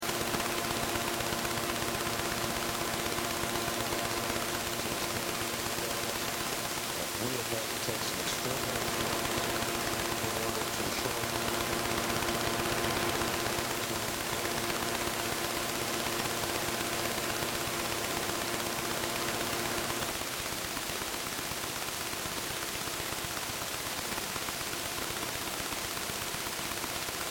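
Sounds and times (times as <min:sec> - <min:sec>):
radio static from bad reception on a Sony Walkman: 0:00.0 - 0:20.4
electric buzzing noise: 0:00.0 - 0:27.2.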